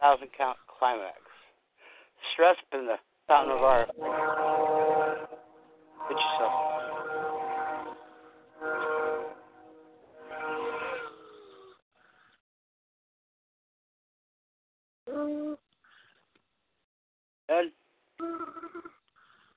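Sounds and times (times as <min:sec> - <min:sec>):
speech: 0:00.0 - 0:01.3, 0:02.2 - 0:05.4, 0:06.0 - 0:06.8, 0:17.5 - 0:18.6
train horn blasts: 0:03.9 - 0:11.2.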